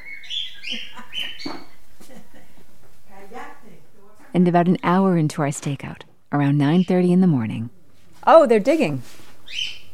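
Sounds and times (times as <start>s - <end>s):
chatty pet bird chirping and chattering in a house: 0.0s - 1.8s, 6.4s - 7.4s, 9.4s - 9.9s
speech: 0.7s - 1.0s, 4.4s - 9.6s.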